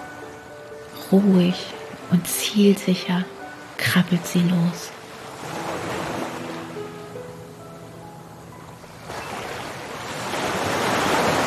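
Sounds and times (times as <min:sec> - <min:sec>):
speech: 0:01.1 - 0:05.0
roaring ocean surf breaking on a beach: 0:03.4 - 0:07.4, 0:08.8 - 0:11.4.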